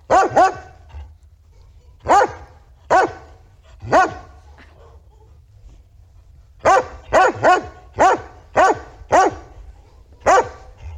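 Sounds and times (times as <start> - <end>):
dog barking: 0.0 - 1.0, 2.0 - 5.3, 6.6 - 10.9.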